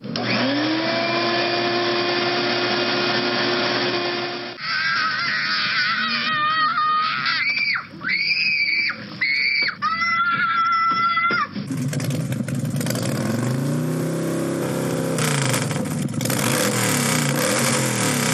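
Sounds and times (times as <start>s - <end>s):
shop vac running: 0.0s - 4.6s, 11.6s - 18.3s
child screaming: 4.6s - 11.6s.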